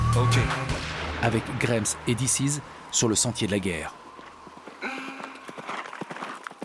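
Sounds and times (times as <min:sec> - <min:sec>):
speech: 0:00.1 - 0:04.0
galloping horse hooves clip-clopping: 0:02.9 - 0:06.6.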